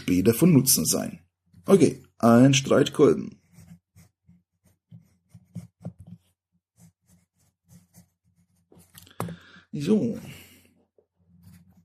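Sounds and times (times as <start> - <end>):
speech: 0.0 - 3.4, 9.8 - 10.4
pencil scratching on note paper: 2.6 - 9.0, 11.0 - 11.8.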